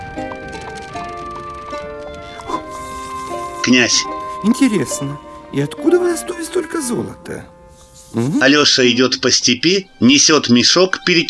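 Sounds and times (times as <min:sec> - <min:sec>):
donkey walking and pulling an empty cart: 0:00.0 - 0:06.2
sustained tonal music: 0:00.0 - 0:11.2
speech: 0:03.6 - 0:11.2.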